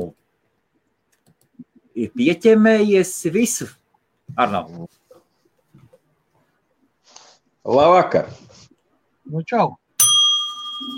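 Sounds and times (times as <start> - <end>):
speech: 2.0 - 5.0, 7.6 - 8.5, 9.3 - 9.8
single bright ding from a small bell: 10.0 - 10.9.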